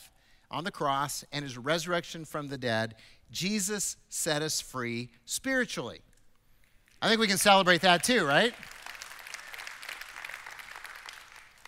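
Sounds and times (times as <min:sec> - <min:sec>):
speech: 0:00.5 - 0:06.1, 0:07.0 - 0:08.8
audience applause: 0:08.4 - 0:11.6.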